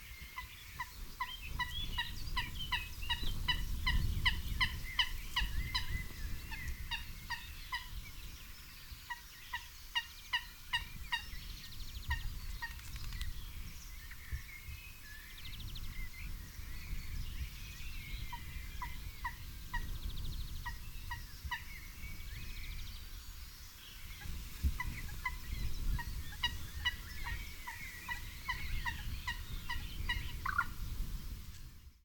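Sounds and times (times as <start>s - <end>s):
common moorhen Gallinula chloropus: 0.0s - 22.8s, 23.8s - 30.8s.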